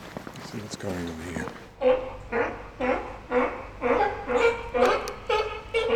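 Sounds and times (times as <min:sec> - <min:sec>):
speech: 0:00.5 - 0:01.7
sea lion honking alarm barks: 0:01.8 - 0:05.9.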